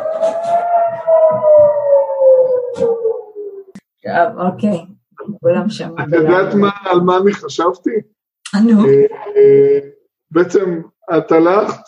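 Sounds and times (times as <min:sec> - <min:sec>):
civil defense air raid siren wailing: 0:00.0 - 0:03.7
speech: 0:04.2 - 0:11.8.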